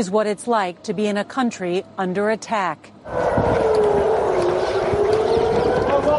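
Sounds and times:
speech: 0:00.0 - 0:04.1
air raid siren wailing during a rocket attack: 0:03.0 - 0:06.1
low rumbling: 0:03.0 - 0:06.1.

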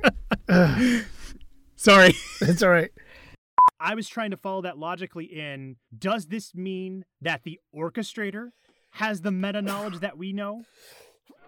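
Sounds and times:
speech: 0:00.0 - 0:01.1, 0:01.8 - 0:03.0, 0:03.8 - 0:11.0
sneeze: 0:09.6 - 0:10.0.

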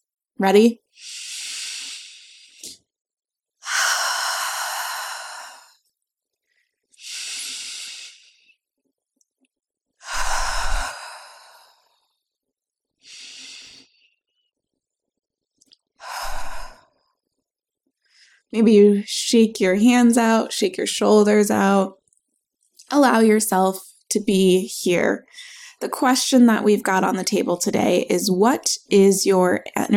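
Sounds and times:
speech: 0:00.4 - 0:01.2, 0:18.5 - 0:22.0, 0:22.9 - 0:29.9
deep breaths in through the nose and out through the mouth: 0:00.9 - 0:02.8, 0:03.6 - 0:05.8, 0:06.4 - 0:08.6, 0:10.0 - 0:12.1, 0:13.0 - 0:14.2.

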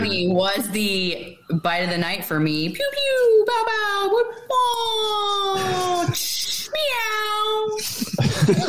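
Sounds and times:
speech: 0:00.0 - 0:07.1
noise: 0:00.0 - 0:08.6
child imitating a cat meow: 0:04.8 - 0:07.8
laughter: 0:07.8 - 0:08.6.

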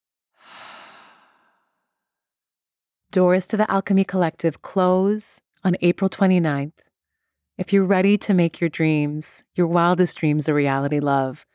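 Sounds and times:
deep breath out during a guided breathing exercise: 0:00.4 - 0:01.8
speech: 0:03.1 - 0:06.9, 0:07.6 - 0:11.5.

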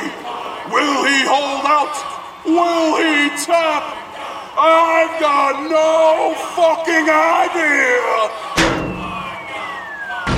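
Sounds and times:
speech: 0:00.7 - 0:04.0, 0:04.6 - 0:08.8
steel chair slamming into a face during a wrestling match: 0:08.6 - 0:09.3.

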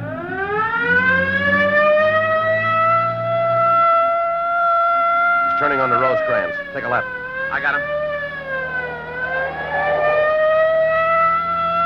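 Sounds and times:
police car siren wailing during a pursuit: 0:00.0 - 0:11.8
speech: 0:06.8 - 0:08.2
low rumble: 0:07.9 - 0:11.4.

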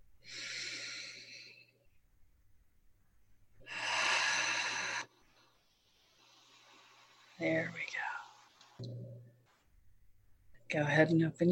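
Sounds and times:
deep breaths in during a grief-clearing sound healing session: 0:00.2 - 0:01.8, 0:03.6 - 0:07.4
speech: 0:07.4 - 0:07.9, 0:10.7 - 0:11.5.

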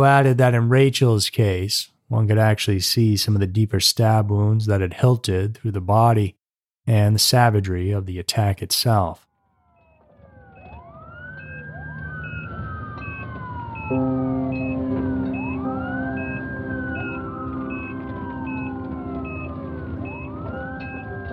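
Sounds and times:
speech: 0:00.0 - 0:09.3
loud ambulance siren wailing: 0:09.4 - 0:21.3
steady low ambulance engine rumble: 0:10.8 - 0:21.3.

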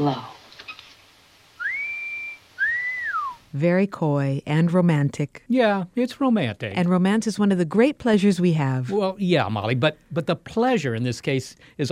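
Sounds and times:
speech: 0:00.0 - 0:00.3, 0:03.6 - 0:11.9
person whistling two sustained notes: 0:01.6 - 0:03.4.

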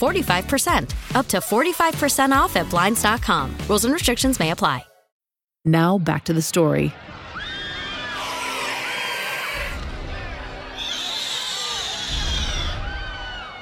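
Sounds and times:
speech: 0:00.0 - 0:04.9, 0:05.6 - 0:07.2
crowd screaming: 0:06.9 - 0:13.5.

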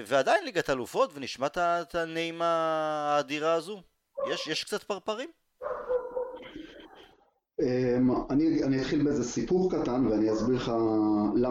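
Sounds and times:
speech: 0:00.0 - 0:05.4, 0:07.6 - 0:11.5
dog barking from the street: 0:04.2 - 0:04.6, 0:05.6 - 0:07.2.

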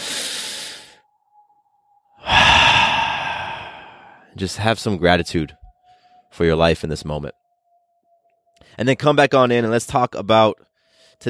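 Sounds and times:
deep breath: 0:00.0 - 0:01.0, 0:02.2 - 0:04.4
faint steady tone: 0:00.5 - 0:09.2
speech: 0:04.4 - 0:05.6, 0:06.4 - 0:07.4, 0:08.6 - 0:11.2.

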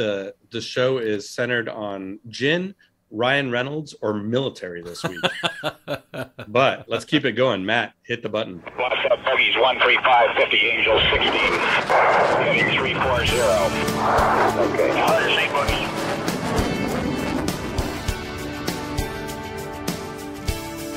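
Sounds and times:
speech: 0:00.0 - 0:16.3
laughter: 0:04.9 - 0:06.9
Sea Dart jet-powered seaplane engine whine: 0:09.1 - 0:20.8.

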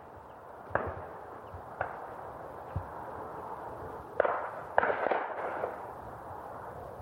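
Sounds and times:
distant shotgun blasts from shooting party: 0:00.7 - 0:03.0, 0:04.2 - 0:05.9.

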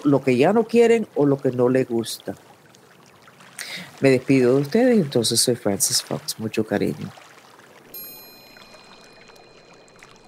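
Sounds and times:
speech: 0:00.0 - 0:02.5, 0:04.0 - 0:07.2
flowing water: 0:00.0 - 0:10.2
bright chime-like tone: 0:07.9 - 0:10.2.

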